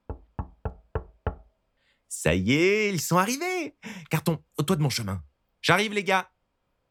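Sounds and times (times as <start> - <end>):
knocks on a wooden door: 0.0 - 1.5
speech: 2.1 - 6.4.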